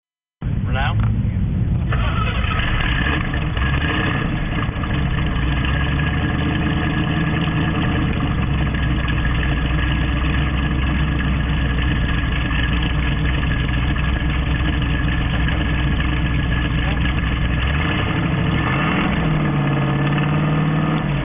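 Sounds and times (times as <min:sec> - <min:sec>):
Camaro exhaust system: 0:00.4 - 0:21.2.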